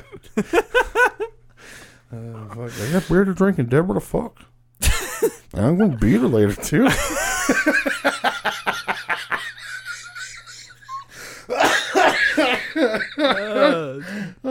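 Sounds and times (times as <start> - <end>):
laughter: 0.0 - 1.4, 4.8 - 5.5, 6.5 - 14.3
speech: 0.4 - 1.1, 2.1 - 4.5, 5.6 - 8.7
strained wheezing gasps: 1.6 - 2.1, 11.0 - 11.6, 13.9 - 14.4
hard coughing fit: 11.5 - 14.0.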